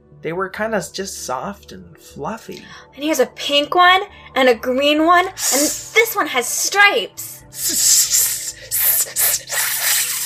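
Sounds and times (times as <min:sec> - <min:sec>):
speech: 0:00.2 - 0:08.2
snakes hissing: 0:05.4 - 0:06.0, 0:07.2 - 0:10.2.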